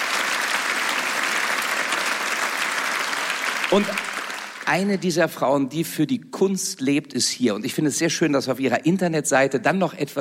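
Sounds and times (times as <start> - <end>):
audience applauding: 0.0 - 5.0
speech: 3.7 - 4.1, 4.7 - 10.1.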